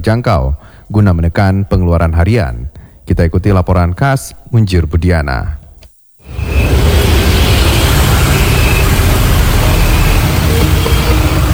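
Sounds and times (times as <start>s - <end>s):
speech: 0.0s - 5.6s
vehicle engines idling at a gas station: 6.3s - 11.5s.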